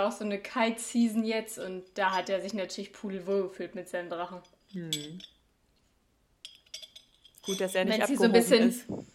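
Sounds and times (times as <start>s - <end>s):
speech: 0.0s - 5.4s, 7.4s - 9.1s
glass straw clinking against a glass of iced coffee: 4.5s - 5.4s, 6.4s - 8.6s.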